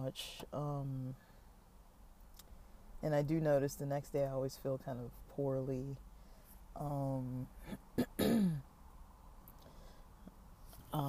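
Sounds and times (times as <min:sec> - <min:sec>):
speech: 0:00.0 - 0:01.3, 0:03.0 - 0:06.1, 0:06.8 - 0:08.5
person with sinus and throat trouble clearing throat after a heavy oily meal: 0:07.6 - 0:08.6.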